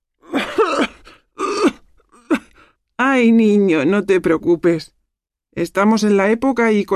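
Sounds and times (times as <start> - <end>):
elderly woman with a winter cold coughing: 0.2 - 2.5
speech: 3.2 - 5.0, 5.6 - 6.9.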